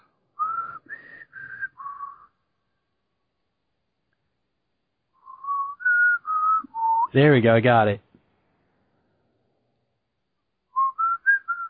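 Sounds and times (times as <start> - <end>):
person whistling a tune: 0.4 - 2.4, 5.2 - 7.1, 10.8 - 11.6
speech: 7.1 - 8.0.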